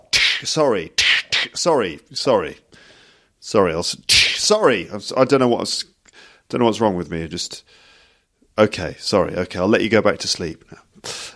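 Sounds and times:
person imitating face slaps with voice: 0.0s - 1.6s, 4.1s - 4.5s
speech: 0.4s - 5.9s, 6.5s - 7.8s, 8.6s - 11.3s.

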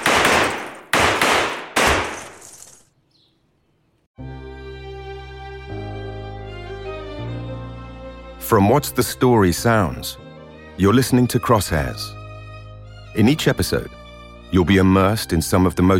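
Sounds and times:
black .32 caliber handgun shots: 0.0s - 2.8s
speech: 8.5s - 10.2s, 10.8s - 12.2s, 13.2s - 15.9s.

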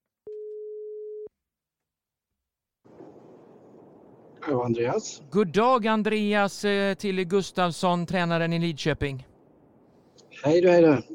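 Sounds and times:
ringback tone of a telephone call being placed: 0.3s - 1.3s
speech: 4.4s - 9.3s, 10.4s - 11.1s.

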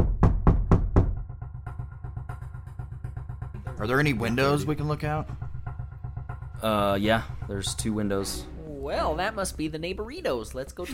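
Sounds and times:
heavy pounding knocks on a door: 0.0s - 1.4s
speech: 3.8s - 5.4s, 6.6s - 10.9s.

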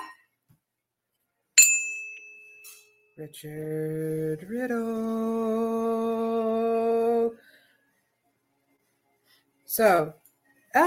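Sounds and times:
hand bell ringing: 1.6s - 3.0s
faint hand bell jingle as it settles: 1.6s - 3.2s
speech: 3.2s - 6.5s, 9.8s - 10.2s.

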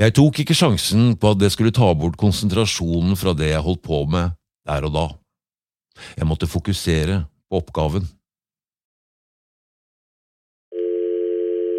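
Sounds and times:
speech: 0.0s - 5.2s, 6.0s - 8.2s
telephone electronic ring tone: 10.7s - 11.7s.

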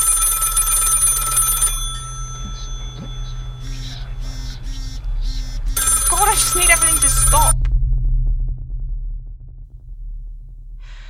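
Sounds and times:
mobile phone ringing shrilly: 0.0s - 4.8s, 5.8s - 7.6s
steady low electrical hum: 0.0s - 11.0s
faint vocal sounds: 2.4s - 7.6s.

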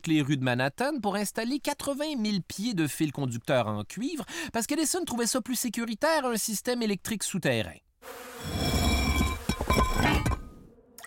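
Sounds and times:
speech: 0.0s - 8.8s
swarm of bees buzzing: 8.0s - 9.5s.

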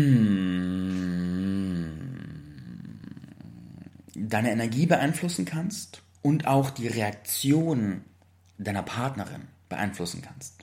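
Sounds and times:
speech: 0.0s - 0.3s, 4.2s - 10.6s
low steady hummed mm from a voice: 0.0s - 4.2s.

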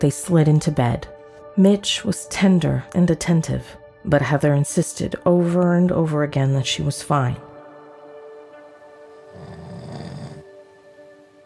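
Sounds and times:
speech: 0.0s - 7.5s
man snoring: 9.1s - 10.6s.

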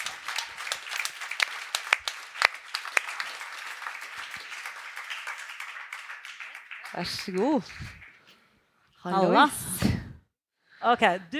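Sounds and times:
audience applause: 0.0s - 8.3s
speech: 6.9s - 8.0s, 9.0s - 10.0s, 10.8s - 11.3s.

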